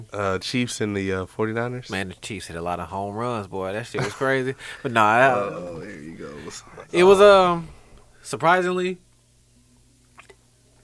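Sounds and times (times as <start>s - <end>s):
speech: 0.0s - 9.1s
low steady hum: 0.0s - 10.8s
laughter: 3.3s - 8.0s
person sipping beer: 4.6s - 8.0s.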